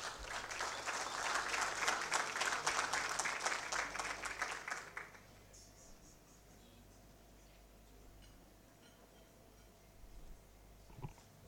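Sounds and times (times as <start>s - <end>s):
crowd applauding: 0.0s - 5.3s.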